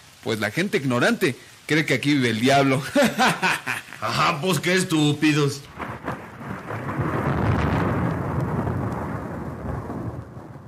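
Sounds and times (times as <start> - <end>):
rain hissing: 0.0 - 10.6
speech: 0.2 - 5.8
laughter: 2.8 - 4.3
deep rolling thunder rumbling: 5.2 - 10.6.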